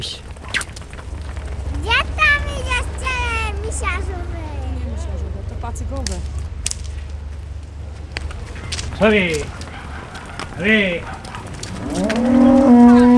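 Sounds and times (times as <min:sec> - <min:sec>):
steady low rumbling: 0:00.0 - 0:13.1
speech: 0:05.8 - 0:06.4, 0:09.0 - 0:09.6, 0:10.6 - 0:11.2
cattle herd mooing while being driven: 0:10.6 - 0:13.1.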